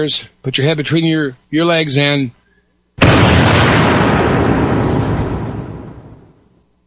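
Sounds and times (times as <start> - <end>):
speech: 0.0 - 2.4
nuclear bomb explosion sound effect with roaring rumble: 3.0 - 6.5.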